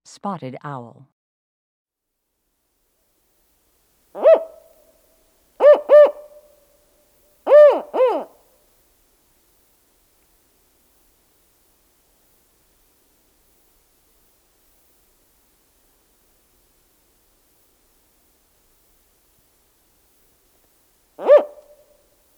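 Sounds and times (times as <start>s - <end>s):
spotted owl calling: 4.2s - 4.7s, 5.6s - 6.4s, 7.5s - 8.4s, 21.2s - 21.8s.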